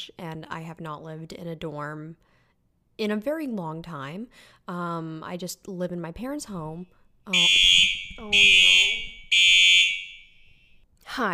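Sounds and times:
speech: 0.0s - 2.3s, 3.0s - 8.8s, 11.2s - 11.3s
building fire alarm blaring: 7.3s - 10.8s.

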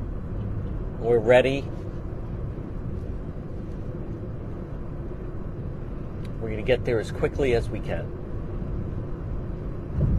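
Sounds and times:
dense road noise: 0.0s - 10.1s
low engine rumble of a car on the move: 0.0s - 10.1s
speech: 1.0s - 1.8s, 6.4s - 8.2s.

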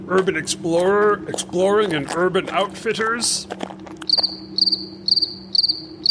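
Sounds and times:
low constant hum: 0.0s - 6.0s
speech: 0.1s - 6.0s
crickets chirping: 4.0s - 6.0s.

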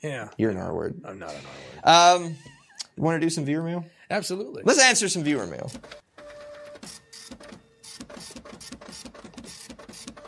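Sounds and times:
speech: 0.0s - 6.0s
printer printing with print head moving back and forth: 5.6s - 10.2s.

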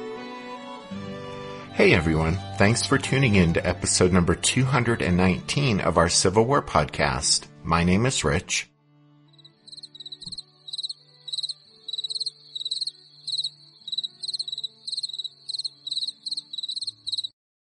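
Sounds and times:
speech: 1.8s - 8.7s
crickets chirping: 9.4s - 17.3s.

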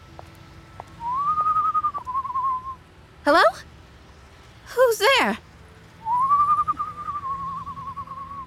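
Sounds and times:
person whistling from a dark alley: 1.0s - 2.8s, 6.0s - 8.4s
speech: 3.2s - 3.7s, 4.8s - 5.4s.

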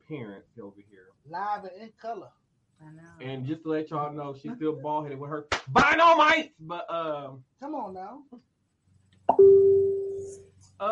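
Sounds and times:
speech: 0.1s - 8.5s, 9.3s - 10.9s
social media notification alert beep: 9.3s - 10.4s.

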